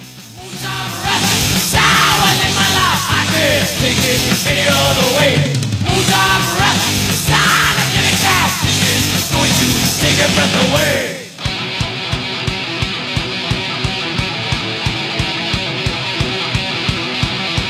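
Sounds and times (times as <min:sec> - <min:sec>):
distorted guitars in a heavy metal track: 0:00.0 - 0:17.6
pounding drums in a heavy metal track: 0:00.0 - 0:17.6
shouted aggressive vocal in a 1983 heavy metal track: 0:00.4 - 0:11.4.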